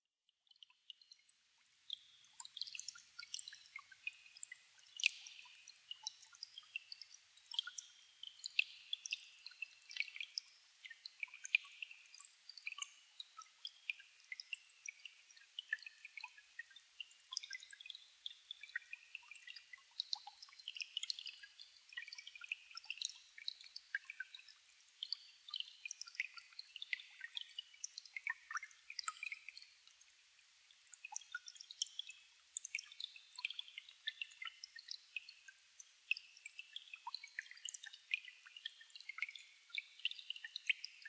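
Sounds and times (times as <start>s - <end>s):
water: 0.3s - 41.0s.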